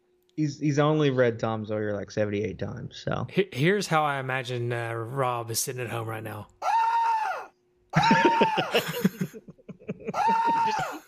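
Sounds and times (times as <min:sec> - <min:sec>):
speech: 0:00.4 - 0:06.6, 0:07.9 - 0:09.2
man screaming: 0:06.6 - 0:09.0, 0:10.1 - 0:11.0
man's choppy laughing yelps: 0:08.0 - 0:11.0.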